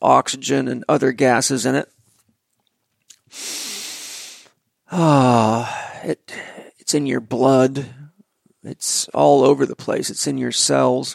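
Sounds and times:
speech: 0.0s - 2.0s, 4.9s - 8.0s, 8.6s - 11.1s
deep breath drawn in through the mouth: 3.3s - 6.7s
voiced sigh as the breath goes out: 3.3s - 6.7s.

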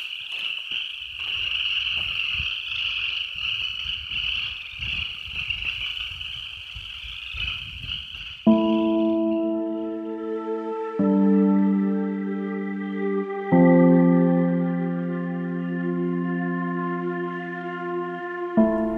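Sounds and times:
chorus of cicadas chirring outdoors at night: 0.0s - 18.9s
harmonic tone: 8.5s - 18.9s.

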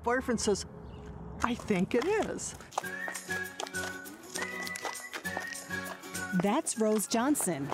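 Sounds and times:
speech: 0.0s - 0.8s, 1.4s - 4.0s, 6.3s - 7.7s
horse's hooves clip-clopping over a hard surface: 1.4s - 7.7s
music-like tones: 2.7s - 7.7s.

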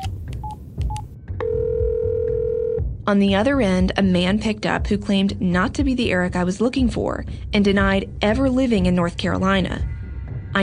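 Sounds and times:
steady continuous telephone line tone: 1.4s - 2.8s
speech: 3.1s - 9.9s.

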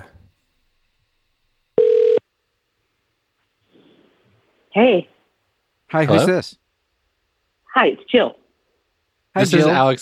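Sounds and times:
telephone tone as a call is dialed: 1.8s - 2.2s
speech: 4.8s - 5.1s, 5.9s - 6.6s, 7.7s - 8.4s, 9.4s - 9.9s.

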